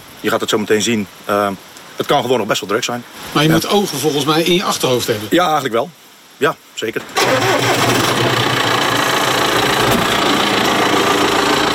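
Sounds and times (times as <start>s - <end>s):
speech: 0.2s - 7.9s
large diesel tractor engine idling on the beach: 7.2s - 11.7s.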